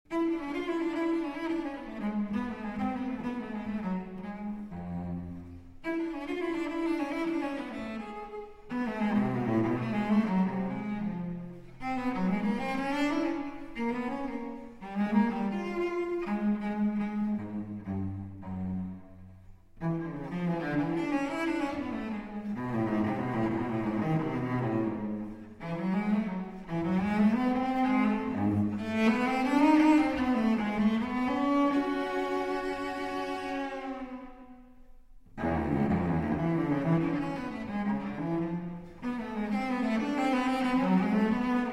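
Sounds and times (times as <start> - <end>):
cello cadenza: 0.1 - 41.7.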